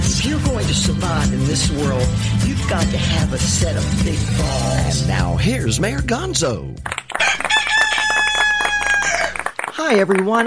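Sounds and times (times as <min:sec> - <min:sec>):
speech: 0:00.3 - 0:07.4, 0:09.9 - 0:10.4
rooster crowing: 0:07.1 - 0:09.5.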